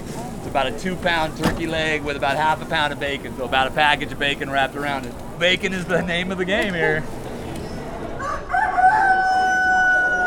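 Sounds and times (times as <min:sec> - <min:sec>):
low murmur at a State Fair: 0:00.0 - 0:10.2
speech: 0:00.5 - 0:07.2
rooster crowing at a State Fair: 0:08.2 - 0:10.2.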